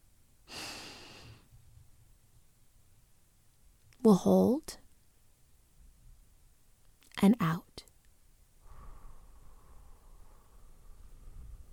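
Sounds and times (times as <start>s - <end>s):
deep breath in during a guided relaxation exercise: 0.5s - 1.5s, 8.6s - 10.8s
speech: 4.0s - 4.8s, 7.2s - 7.8s.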